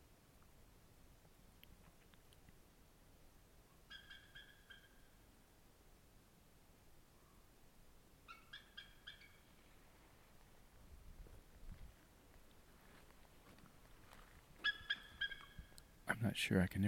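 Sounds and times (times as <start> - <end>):
eagle chattering calls: 3.9 - 5.1, 8.3 - 9.5, 14.6 - 15.9
speech: 16.2 - 16.8.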